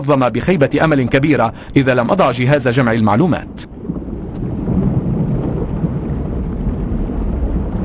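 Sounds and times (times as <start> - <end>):
speech: 0.0 - 3.7
deep continuous rumble of thunder: 0.0 - 7.8
steady rain: 0.0 - 7.8
wind: 0.0 - 7.8.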